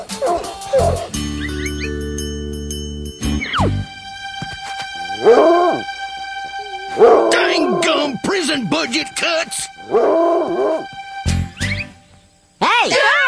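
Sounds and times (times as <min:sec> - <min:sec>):
droning musical tone: 0:00.0 - 0:12.6
tracking dog whining whimper: 0:00.2 - 0:01.1, 0:05.2 - 0:05.8, 0:09.9 - 0:10.9
faint high tinkling: 0:01.6 - 0:03.6.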